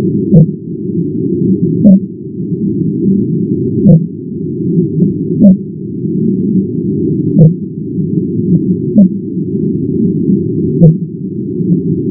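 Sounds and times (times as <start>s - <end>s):
constant low-frequency noise: 0.0s - 12.0s
fin whale calls sped up ten times: 0.3s - 0.6s, 1.8s - 2.1s, 3.8s - 4.1s, 4.8s - 5.7s, 7.4s - 7.6s, 8.5s - 9.2s, 10.8s - 11.0s.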